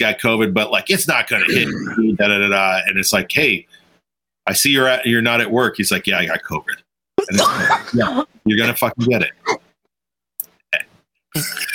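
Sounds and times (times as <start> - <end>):
speech: 0.0 - 3.8, 4.5 - 9.6, 10.7 - 11.7
person coughing: 1.4 - 2.2, 7.2 - 8.2.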